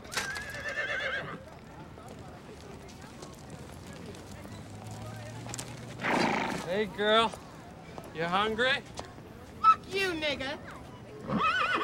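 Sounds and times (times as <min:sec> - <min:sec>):
horse neighing: 0:00.2 - 0:01.4, 0:06.0 - 0:06.7, 0:11.2 - 0:11.8
speech: 0:06.8 - 0:07.4, 0:08.2 - 0:08.9, 0:09.9 - 0:10.7, 0:11.3 - 0:11.8.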